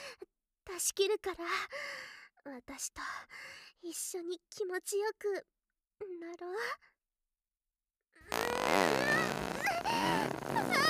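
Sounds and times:
speech: 0.8s - 6.9s
long loud fart: 8.3s - 10.8s.

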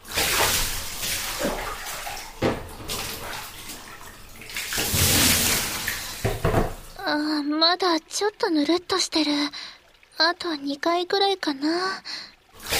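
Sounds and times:
running water rinsing something off: 0.0s - 7.0s, 12.1s - 12.7s
speech: 7.1s - 9.6s, 10.2s - 12.2s.

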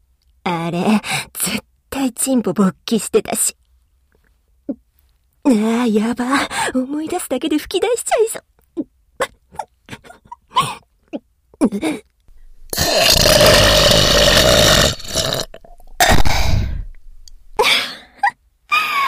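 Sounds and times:
speech: 0.7s - 3.6s, 5.4s - 8.5s, 9.2s - 12.1s
woman's stifled laughter: 9.2s - 10.8s
woman burping after laughing: 12.6s - 17.7s
quick breaths: 16.0s - 17.6s.

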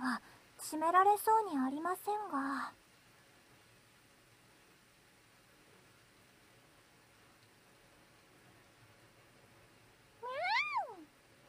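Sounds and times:
speech: 0.7s - 2.8s
cat meowing: 10.2s - 11.1s.

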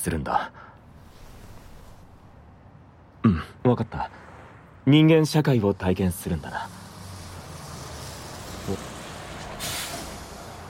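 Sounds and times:
speech: 0.0s - 0.7s, 3.6s - 4.2s, 4.8s - 6.8s, 8.7s - 8.9s
bus engine rumbling steadily: 0.6s - 10.6s
bus air brakes hissing as the bus pulls up: 6.6s - 10.6s.

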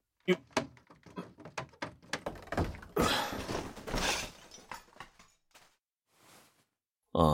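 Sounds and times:
door forced open against stored clutter: 0.3s - 5.0s
rapid knocks and thumps: 0.3s - 5.3s.

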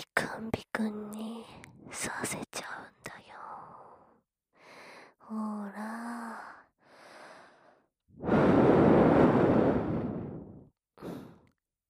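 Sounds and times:
speech: 0.0s - 1.2s, 1.9s - 2.4s
breath blown softly onto an earlobe: 8.2s - 11.6s.

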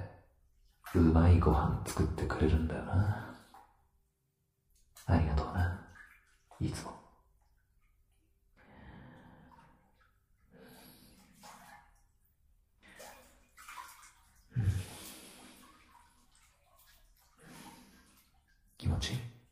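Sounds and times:
water sloshing and splashing in a bubble bath while washing body: 0.0s - 19.5s
speech: 0.9s - 3.3s, 5.1s - 5.8s, 6.6s - 7.0s
quiet breaths and small gasps: 8.6s - 11.8s, 12.8s - 13.7s, 14.4s - 16.4s, 17.2s - 18.5s.

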